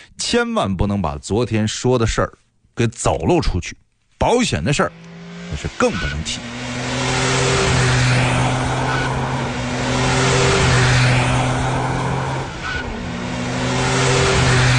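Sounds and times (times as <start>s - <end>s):
speech: 0.3s - 6.8s
engines of rally race cars setting off: 4.6s - 14.7s.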